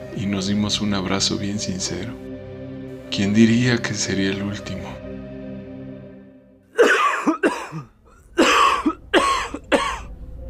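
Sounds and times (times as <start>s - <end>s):
speech: 0.2s - 2.3s, 3.2s - 5.0s
man's dry hacking persistent cough: 6.8s - 10.1s.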